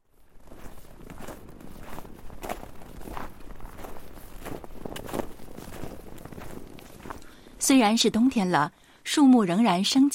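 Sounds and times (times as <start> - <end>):
footsteps crunching on a forest path: 0.0 - 8.0
speech: 7.7 - 10.1.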